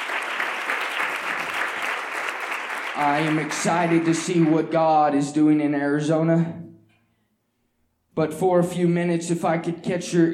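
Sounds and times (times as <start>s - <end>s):
audience applause with hand clapping: 0.0s - 4.8s
speech: 3.0s - 6.6s, 8.2s - 10.3s.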